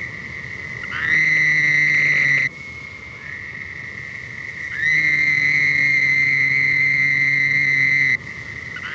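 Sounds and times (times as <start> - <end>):
Bufonidae toad trilling: 0.8 - 2.5, 4.7 - 8.2, 8.8 - 8.9.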